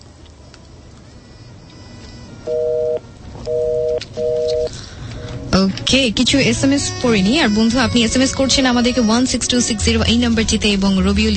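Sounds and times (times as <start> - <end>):
phone line beeps after a disconnected call: 2.5 - 4.7
speech: 5.6 - 11.3.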